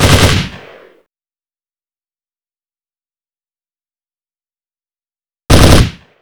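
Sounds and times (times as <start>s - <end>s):
AR33 weapon burst fire: 0.0s - 0.9s, 5.5s - 6.0s.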